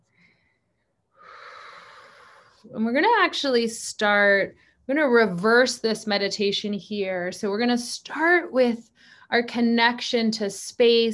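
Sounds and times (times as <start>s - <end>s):
deep exhaled breath: 1.2s - 2.6s
speech: 2.6s - 11.1s.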